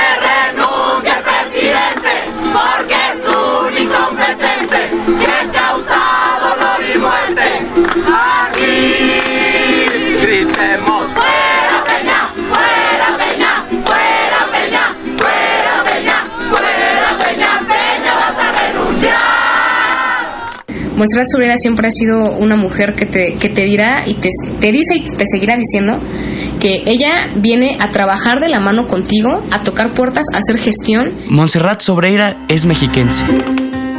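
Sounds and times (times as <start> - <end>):
large crowd shouting in unison in rhythmic chant-like bursts: 0.0 - 20.6
speech: 21.0 - 33.8.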